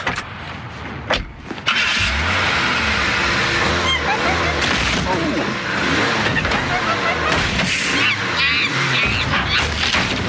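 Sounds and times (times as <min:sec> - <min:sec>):
cars crashing into one another: 0:01.6 - 0:10.2
laughter: 0:03.7 - 0:09.6
squealing: 0:07.8 - 0:09.8.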